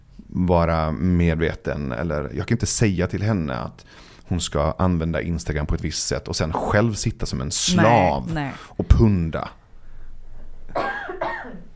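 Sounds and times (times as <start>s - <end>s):
speech: 0.4s - 9.6s
person coughing harshly: 10.7s - 11.7s.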